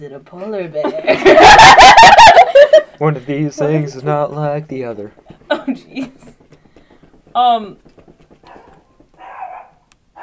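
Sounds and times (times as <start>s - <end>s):
speech: 0.0s - 6.2s, 7.4s - 7.9s
laughter: 0.8s - 3.0s
dog barking: 8.4s - 10.2s.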